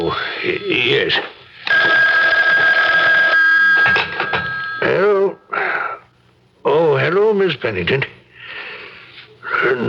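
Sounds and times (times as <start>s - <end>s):
speech: 0.1s - 1.9s, 4.8s - 5.1s, 7.3s - 8.2s, 9.7s - 9.8s
telephone bell ringing: 1.7s - 5.0s.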